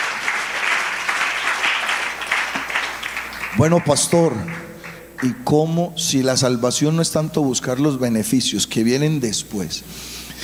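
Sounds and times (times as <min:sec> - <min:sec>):
church audience applauding: 0:00.0 - 0:05.8
speech: 0:03.6 - 0:10.4.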